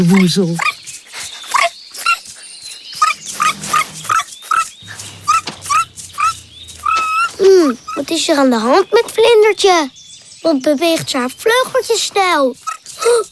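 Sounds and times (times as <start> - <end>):
speech: 0.0 - 0.8, 8.2 - 13.3
small dog whimpering: 1.5 - 2.2, 3.0 - 8.5, 12.6 - 13.3
small dog yipping and barking: 3.0 - 8.2.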